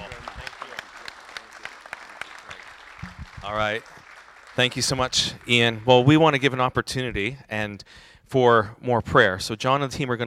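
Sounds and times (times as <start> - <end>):
audience applause at a church gathering: 0.0 - 6.4
speech: 3.4 - 4.0, 4.6 - 10.2.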